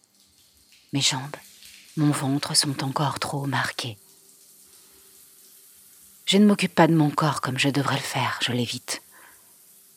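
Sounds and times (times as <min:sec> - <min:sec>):
shower water running: 0:00.0 - 0:09.9
speech: 0:00.9 - 0:04.0, 0:06.3 - 0:09.0.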